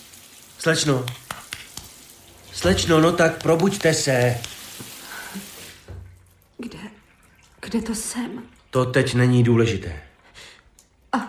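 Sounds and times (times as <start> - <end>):
water running from a tap: 0.0 - 10.0
speech: 0.6 - 1.2, 2.6 - 4.5, 7.7 - 10.1.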